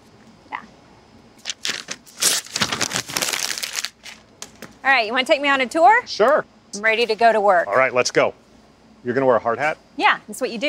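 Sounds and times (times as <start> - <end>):
paper crumpling: 1.4 - 4.3
speech: 4.9 - 8.4, 9.0 - 10.6.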